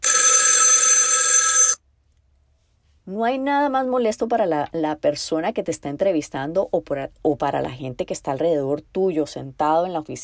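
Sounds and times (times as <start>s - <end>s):
cell phone ringing: 0.0s - 1.8s
speech: 3.1s - 10.2s.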